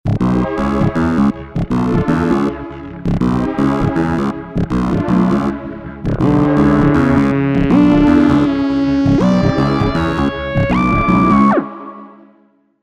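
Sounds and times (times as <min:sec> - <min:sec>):
Korg Prologue synthesizer: 0:00.1 - 0:12.7.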